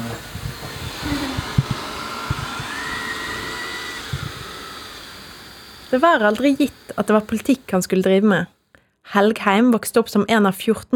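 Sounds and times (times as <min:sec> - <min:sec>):
robot vacuum cleaner running at home: 0:00.0 - 0:08.5
speech: 0:05.9 - 0:10.9.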